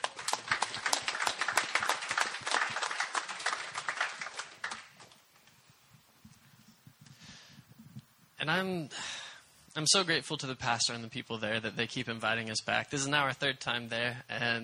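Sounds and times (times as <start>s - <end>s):
crowd clapping: 0.0s - 5.2s
speech: 8.5s - 9.2s, 9.8s - 14.6s.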